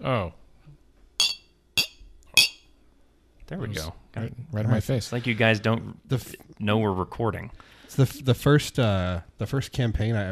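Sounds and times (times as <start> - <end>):
speech: 0.0 - 0.4, 3.5 - 10.3
glasses clinking together in a toast: 1.2 - 2.7.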